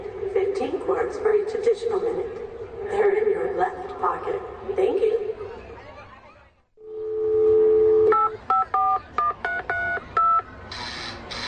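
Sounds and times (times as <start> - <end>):
speech: 0.6 - 5.3
telephone dial tone: 7.2 - 10.4
crisp telephone keypad beeps: 7.7 - 10.5.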